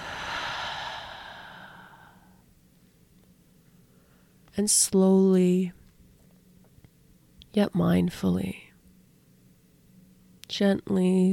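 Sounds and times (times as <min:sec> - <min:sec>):
long deep breath exhaled through the mouth in a guided breathing exercise: 0:00.0 - 0:02.3
speech: 0:04.6 - 0:05.8, 0:07.6 - 0:08.6, 0:10.5 - 0:11.3.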